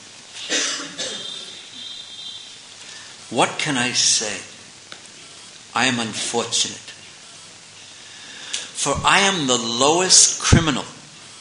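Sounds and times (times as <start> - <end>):
faint steady high hiss: 0.0 - 11.3
rough coughs: 0.4 - 1.6
speech: 3.3 - 4.5, 5.8 - 6.9, 8.8 - 10.9.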